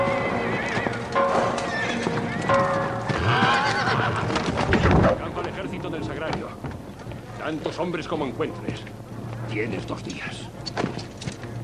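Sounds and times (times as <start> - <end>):
horses neighing and snorting: 0.0 - 5.2
hooves clip-clopping on hard ground: 0.0 - 11.6
speech: 7.8 - 10.5.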